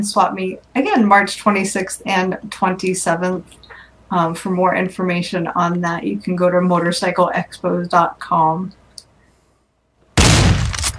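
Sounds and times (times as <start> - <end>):
speech: 0.0 - 8.8
shotgun blast: 10.2 - 10.9.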